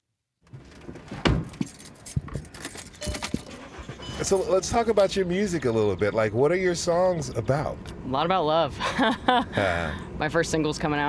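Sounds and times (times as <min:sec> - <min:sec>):
car seatbelt being pulled and buckled: 0:01.5 - 0:03.7
speech: 0:04.2 - 0:11.0.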